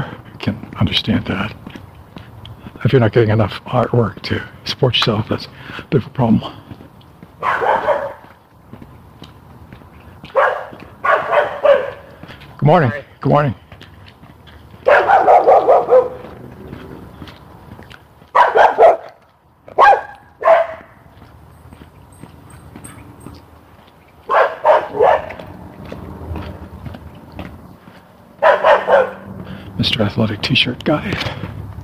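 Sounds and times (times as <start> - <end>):
speech: 0.8 - 1.6, 2.8 - 6.6, 12.6 - 13.6, 30.2 - 31.6
small Scottish terrier barking: 7.4 - 8.4, 10.3 - 12.2, 14.8 - 16.3, 18.3 - 21.0, 24.2 - 25.6, 28.4 - 29.3.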